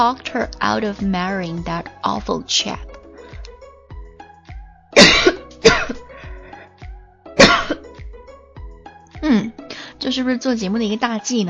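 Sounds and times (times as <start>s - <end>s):
speech: 0.0s - 2.9s, 10.1s - 11.4s
quieter breathy sounds: 3.0s - 3.6s, 6.0s - 7.0s, 9.2s - 10.0s
person coughing: 5.0s - 6.2s, 7.4s - 7.9s.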